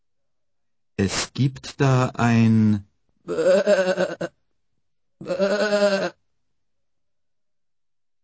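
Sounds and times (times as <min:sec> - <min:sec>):
speech: 0:01.0 - 0:04.4, 0:05.2 - 0:06.2
sheep on a farm bleating: 0:03.3 - 0:04.4, 0:05.2 - 0:06.2.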